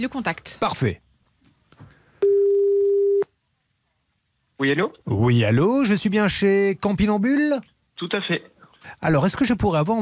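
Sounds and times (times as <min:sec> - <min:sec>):
speech: 0:00.0 - 0:01.1, 0:04.6 - 0:10.0
telephone ringback tone while placing an outgoing call to a company: 0:02.2 - 0:03.2.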